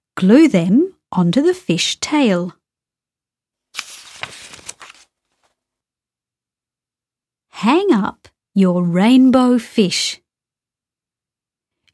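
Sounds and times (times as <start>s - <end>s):
speech: 0.2s - 2.6s, 7.6s - 10.2s
coloured paper rustling: 3.7s - 5.7s.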